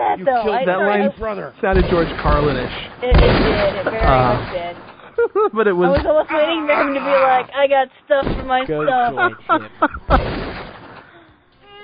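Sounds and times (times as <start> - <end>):
laughter: 0.0 - 2.0, 3.6 - 7.5, 8.5 - 10.3
speech: 0.0 - 10.6
gunshot sound effect with flying bullet: 1.7 - 5.0, 10.1 - 11.1.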